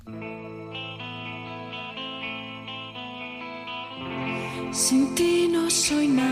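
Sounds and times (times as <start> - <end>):
pop song intro with effect-laden synth or guitar chords on a steady beat: 0.1 - 6.3
speech: 4.7 - 6.3.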